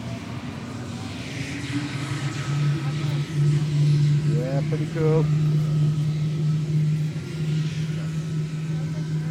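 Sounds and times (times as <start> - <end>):
helicopter turbine engine starting with blades turning: 0.0 - 9.2
speech: 1.7 - 2.0, 4.7 - 5.4.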